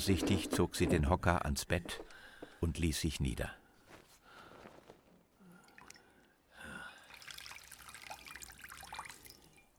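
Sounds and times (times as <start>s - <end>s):
speech: 0.0s - 3.6s
water trickling and dripping from a cloth into a bowl in a bedroom: 7.0s - 9.7s.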